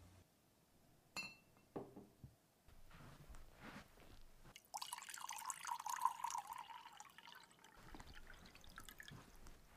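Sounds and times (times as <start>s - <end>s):
glass clink: 1.1s - 1.7s
water running from a tap into a glass: 4.5s - 9.3s.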